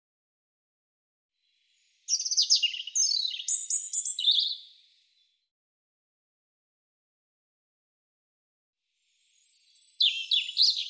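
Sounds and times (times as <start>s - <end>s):
European robin singing: 1.7s - 4.8s, 9.2s - 10.8s.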